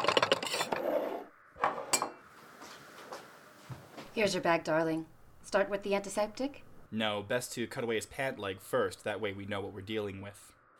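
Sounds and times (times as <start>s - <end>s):
dishes and candles clinking and scraping as they are cleared from a table: 0.0s - 2.3s
speech: 4.2s - 10.6s.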